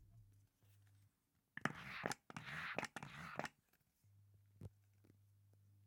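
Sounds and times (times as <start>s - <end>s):
wet hand rubbing with lather while hand-washing: 1.6s - 3.6s.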